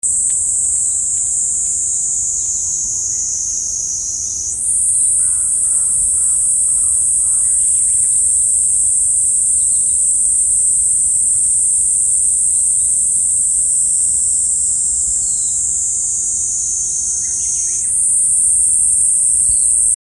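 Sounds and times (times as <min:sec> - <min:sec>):
niiniizemi cicada buzzing: 0:00.0 - 0:20.0.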